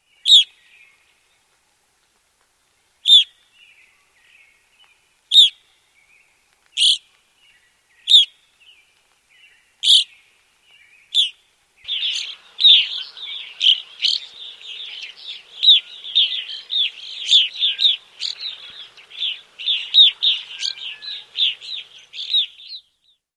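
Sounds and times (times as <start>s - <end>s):
evening grosbeak calling: 0.3s - 0.5s, 3.1s - 3.3s, 5.3s - 5.6s, 8.0s - 8.3s, 9.8s - 10.1s, 11.1s - 23.2s.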